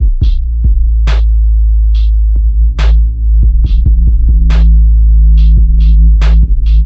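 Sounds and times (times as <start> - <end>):
heavily overloaded trap drum loop with kick and snare: 0.0 - 6.8.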